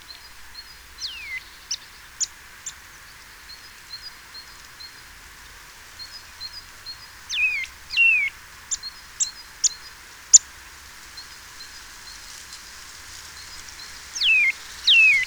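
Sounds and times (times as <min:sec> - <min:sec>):
Eurasian Nuthatch Sitta europaea calls: 0:00.1 - 0:05.1, 0:06.0 - 0:10.5, 0:13.4 - 0:15.2.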